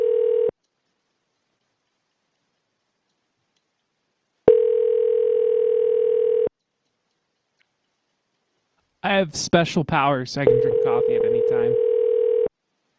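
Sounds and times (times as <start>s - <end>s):
telephone keypad tone in an automated phone menu: 0.0s - 0.5s, 4.5s - 6.5s, 10.5s - 12.5s
speech: 9.1s - 11.9s.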